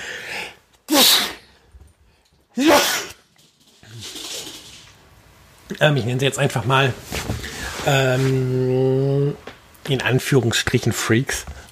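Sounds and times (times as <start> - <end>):
person sneezing: 0.9 - 1.6, 2.6 - 3.2
speech: 2.6 - 3.1, 5.7 - 7.2, 7.8 - 11.6.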